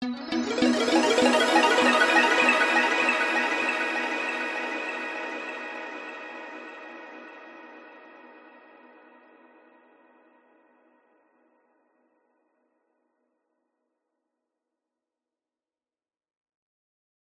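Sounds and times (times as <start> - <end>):
magical rising twinkling nostalgic sound design: 0.1 - 6.4.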